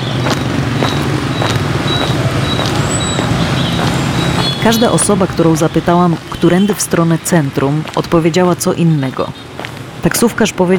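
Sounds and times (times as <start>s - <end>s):
vehicles whooshing past: 0.0s - 7.6s
dense street traffic rumble on a city street: 0.0s - 10.7s
speech: 4.7s - 10.7s.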